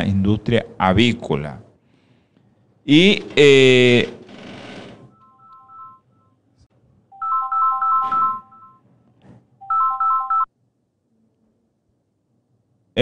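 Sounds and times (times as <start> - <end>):
speech: 0.0 - 1.6, 2.9 - 4.2
phone electronic ringtone playing a bright beeping melody: 5.1 - 6.4, 7.1 - 8.9, 9.6 - 10.5.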